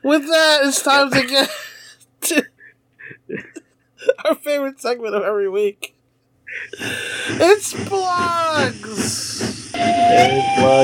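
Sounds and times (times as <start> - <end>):
speech: 0.1 - 2.5, 4.2 - 10.8
hissing steam: 6.6 - 10.8
loud shrill steam train whistle: 9.4 - 10.8.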